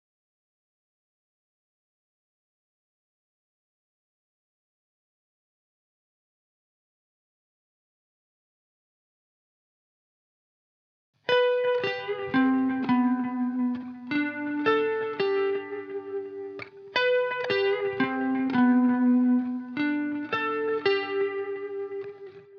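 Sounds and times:
lead guitar in G major at 170 BPM: 0:11.3 - 0:22.5.

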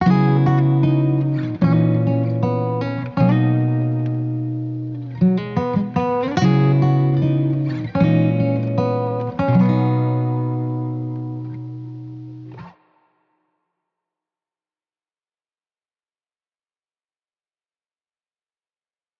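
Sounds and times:
wet acoustic guitar loop in B major: 0:00.0 - 0:12.8.

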